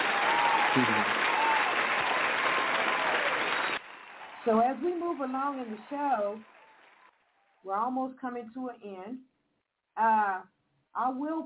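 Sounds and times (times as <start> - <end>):
group applauding: 0.0 - 7.4
speech: 0.8 - 1.2, 4.4 - 6.5, 7.6 - 9.3, 10.0 - 11.4.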